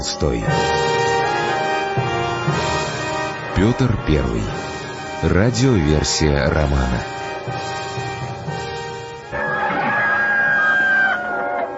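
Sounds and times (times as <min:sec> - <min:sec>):
speech: 0:00.0 - 0:00.8, 0:03.6 - 0:07.8
steady tonal background: 0:00.0 - 0:11.7
rooster crowing at a murky February dawn: 0:09.4 - 0:11.7.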